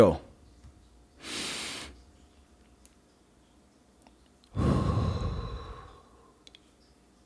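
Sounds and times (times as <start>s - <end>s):
slow deep breath during a guided relaxation exercise: 4.5s - 6.4s.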